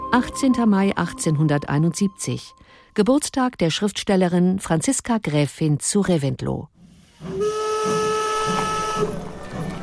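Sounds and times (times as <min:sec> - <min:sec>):
speech: 0:00.1 - 0:09.2
steam train whistle: 0:07.2 - 0:09.5
steam locomotive chuffing and hissing: 0:07.3 - 0:09.8.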